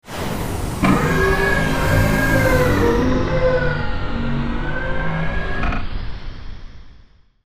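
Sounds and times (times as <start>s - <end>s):
spaceship engine shutting down: 0.2s - 6.7s
spaceship doors opening: 0.6s - 6.0s.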